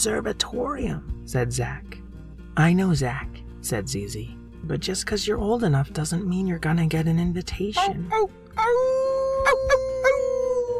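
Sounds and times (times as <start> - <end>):
speech: 0.0 - 2.0, 2.6 - 10.2
long howl from a giant shaggy brown werewolf: 8.6 - 10.7.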